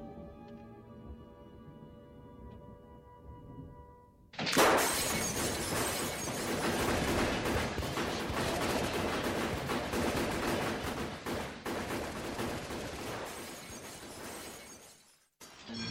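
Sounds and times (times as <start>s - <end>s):
glass shattering: 4.4s - 6.8s, 13.3s - 15.7s
dense bursts of gunfire: 4.4s - 14.7s.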